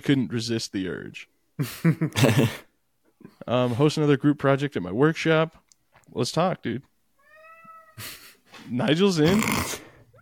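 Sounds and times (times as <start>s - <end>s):
speech: 0.0s - 6.9s, 8.0s - 10.2s
cat meowing loudly: 7.2s - 8.0s.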